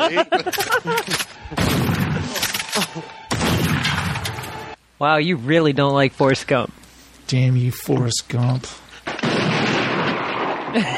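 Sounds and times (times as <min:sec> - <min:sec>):
speech: 0:00.0 - 0:01.2, 0:05.0 - 0:08.8, 0:10.8 - 0:10.9
laughter: 0:00.0 - 0:03.2, 0:10.8 - 0:10.9
gunshot sound effect bangs: 0:01.6 - 0:02.4, 0:03.3 - 0:04.7, 0:09.1 - 0:10.8.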